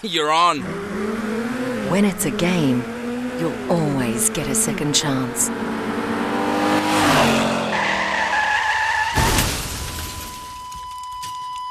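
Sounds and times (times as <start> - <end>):
speech: 0.0 - 1.3, 1.9 - 6.1
car engine roaring during reckless driving: 0.0 - 9.9
loud high tyre squeal of a skidding car: 6.8 - 10.4
car crashing after a skid: 7.0 - 10.9.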